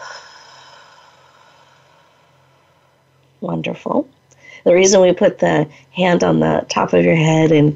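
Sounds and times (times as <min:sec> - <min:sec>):
person breathing in through nose and out through mouth: 0:00.0 - 0:03.0
speech: 0:03.4 - 0:07.7.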